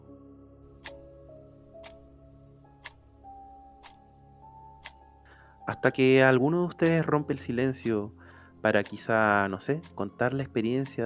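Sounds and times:
clock ticking: 1.8 - 2.0, 2.8 - 3.0, 3.8 - 4.0, 4.8 - 5.0, 5.8 - 8.0, 8.8 - 9.2, 9.8 - 11.0
speech: 5.7 - 11.0.

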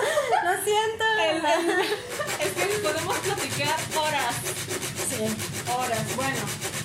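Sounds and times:
laughter: 0.0 - 3.6
people chatting casually: 0.0 - 6.6
speech: 0.6 - 6.7
resin being sanded: 1.8 - 6.8.

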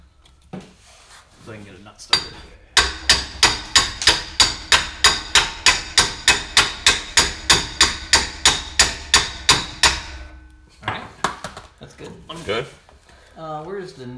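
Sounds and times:
speech: 1.5 - 2.6, 12.0 - 12.8, 13.4 - 14.1
hammer tapping a part into a yoke during assembly: 2.1 - 10.5.

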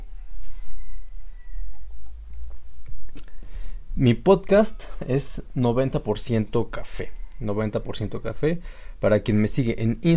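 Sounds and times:
wet mouth clicks: 2.0 - 3.4
person sipping hot coffee: 2.5 - 3.6
speech: 4.0 - 10.1.

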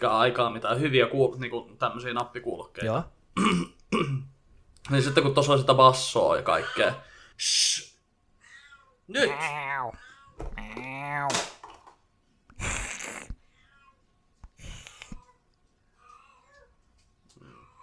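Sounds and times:
speech: 0.0 - 7.9, 9.1 - 11.5
cat in heat yowling: 9.2 - 11.4.

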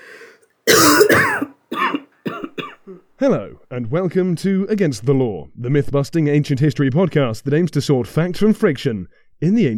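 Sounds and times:
faint breathy sound: 0.0 - 0.4
person clearing throat: 0.7 - 3.0
speech: 3.2 - 9.7.

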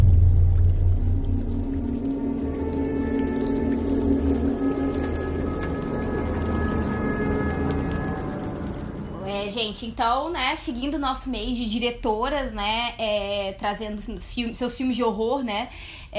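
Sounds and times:
short musical interlude of droning low tones and shimmering higher notes: 0.8 - 9.2
speech: 9.6 - 16.1.

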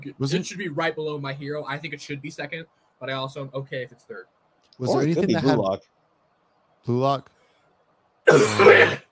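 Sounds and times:
speech: 0.0 - 6.0, 6.8 - 7.4, 8.3 - 9.0
throat-clearing cough: 8.3 - 9.1.

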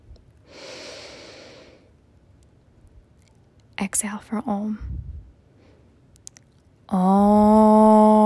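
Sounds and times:
deep inhale during a guided meditation: 0.4 - 1.9
speech: 3.8 - 5.0, 6.9 - 8.1.

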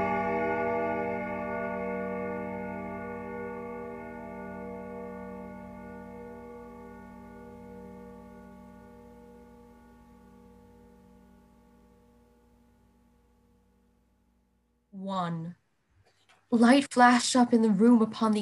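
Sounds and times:
church clock bell tolling at night: 0.0 - 12.0
speech: 15.0 - 15.6, 16.5 - 18.4.

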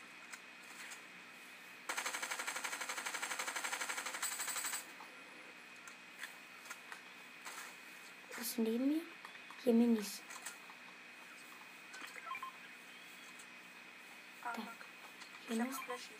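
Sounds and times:
video game gunfire from shooting at enemies: 1.9 - 4.9
speech: 8.4 - 10.3, 15.5 - 16.1.

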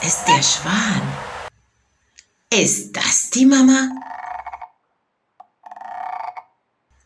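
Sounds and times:
speech: 0.0 - 1.4, 2.5 - 4.0
frog giving loud rattling croaks: 3.8 - 6.8.

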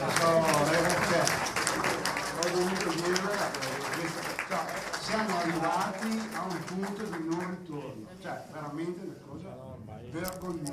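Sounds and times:
crowd applauding: 0.0 - 7.7.

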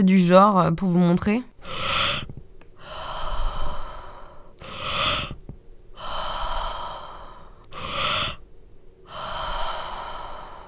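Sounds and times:
speech: 0.0 - 2.3
loud forceful breathing with noisy inhalations and powerful exhalations: 1.6 - 8.4, 9.0 - 10.6.

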